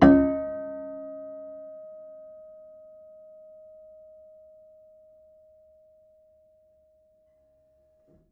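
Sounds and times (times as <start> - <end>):
mid piano harmonics: 0.0 - 1.8.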